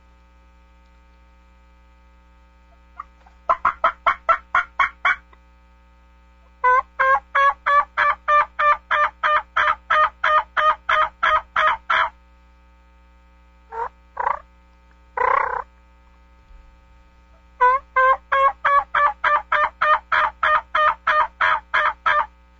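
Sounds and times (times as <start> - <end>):
faint low hum: 0.0 - 22.5
imitation turkey yelps from a latex mouth call: 3.0 - 5.3, 6.6 - 12.1, 13.7 - 14.4, 15.2 - 15.7, 17.6 - 22.3.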